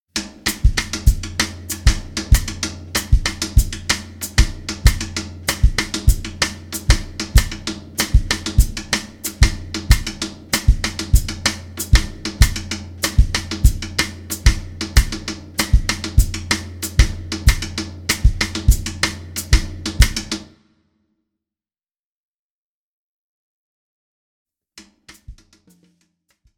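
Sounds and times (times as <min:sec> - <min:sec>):
cascara groove: 0:00.2 - 0:20.4.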